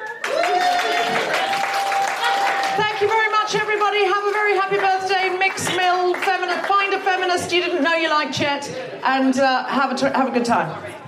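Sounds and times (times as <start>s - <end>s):
audience applause for a keyboard player at a live evening show: 0.0s - 7.8s
speech: 2.8s - 11.0s.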